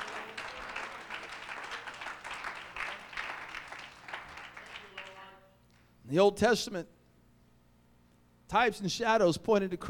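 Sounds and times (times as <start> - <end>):
audience clapping hands in praise: 0.0 - 5.1
speech: 6.1 - 7.0, 8.5 - 9.8.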